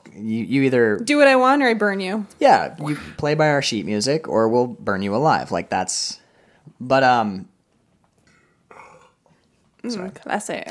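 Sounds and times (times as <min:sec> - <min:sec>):
speech: 0:00.2 - 0:06.2, 0:06.8 - 0:07.5, 0:09.8 - 0:10.6
person burping with a throaty rasp: 0:08.7 - 0:09.2.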